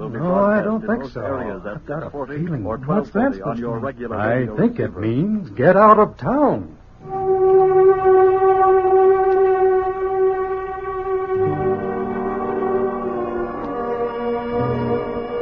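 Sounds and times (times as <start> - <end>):
speech: 0.1 - 7.2
air raid warning horns: 7.0 - 15.4
air raid warning sirens: 7.0 - 15.4.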